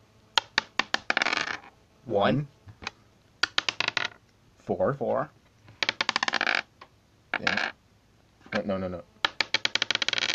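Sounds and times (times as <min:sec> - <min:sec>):
dice clattering on a hard tabletop: 0:00.4 - 0:01.7, 0:03.4 - 0:04.2, 0:05.8 - 0:06.7, 0:07.4 - 0:07.8, 0:09.2 - 0:10.3
speech: 0:02.1 - 0:02.6, 0:04.7 - 0:05.4, 0:07.4 - 0:07.7, 0:08.6 - 0:09.1.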